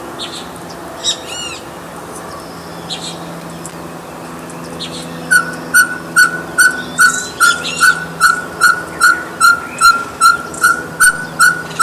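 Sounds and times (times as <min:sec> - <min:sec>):
Ferruginous pygmy owl soft whistled toots: 0:05.3 - 0:11.8.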